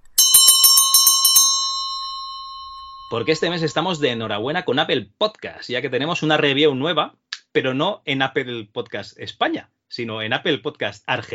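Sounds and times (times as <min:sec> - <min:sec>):
bright high-pitched metallic bell ringing: 0:00.0 - 0:04.3
speech: 0:03.1 - 0:11.3.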